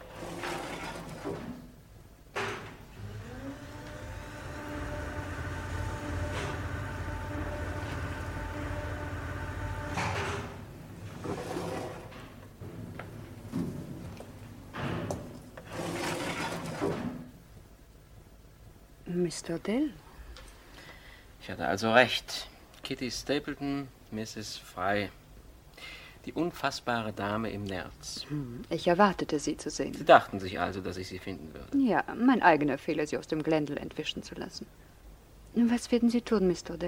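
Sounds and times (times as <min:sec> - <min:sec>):
elevator mechanical motor hum: 0:00.0 - 0:17.3
elevator clunk: 0:02.3 - 0:02.9, 0:08.8 - 0:17.3
speech: 0:19.2 - 0:20.0, 0:21.5 - 0:25.2, 0:26.2 - 0:34.9, 0:35.6 - 0:36.8.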